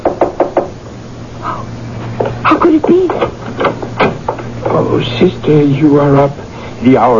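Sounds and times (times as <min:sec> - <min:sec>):
knocking on a door: 0:00.0 - 0:00.7, 0:02.2 - 0:04.9
faint hum: 0:00.0 - 0:07.1
speech: 0:04.9 - 0:07.1.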